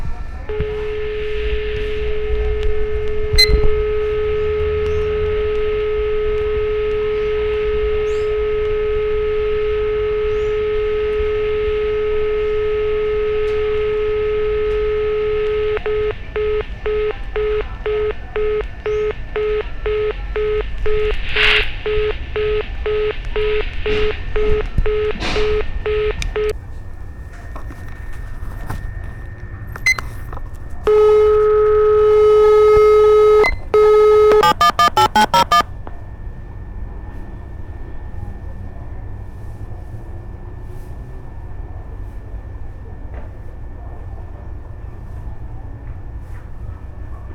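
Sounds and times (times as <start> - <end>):
telephone in Brazil: 0.5 - 26.5, 30.9 - 35.6.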